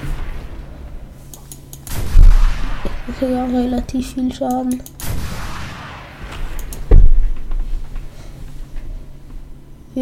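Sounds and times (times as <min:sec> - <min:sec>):
loud low video game explosion boom: 0:00.0 - 0:01.2, 0:01.9 - 0:03.6, 0:05.0 - 0:07.8
faint video game gunshots at a tank: 0:01.9 - 0:03.6, 0:05.0 - 0:07.9
speech: 0:03.1 - 0:04.9.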